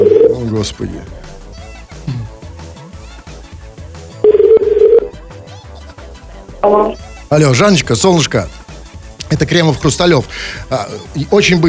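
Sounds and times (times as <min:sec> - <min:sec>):
telephone keypad dialing tones: 0:00.0 - 0:00.4, 0:04.3 - 0:05.1
continuous music: 0:00.0 - 0:11.6
speech: 0:00.6 - 0:01.3, 0:06.6 - 0:08.6, 0:09.3 - 0:11.6.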